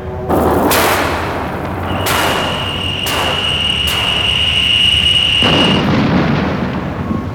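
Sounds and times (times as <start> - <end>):
steady high electronic whine: 0.0 - 5.9
continuous rumbling drone: 0.0 - 7.3
space fighter weapons firing and hitting a target: 0.0 - 7.3.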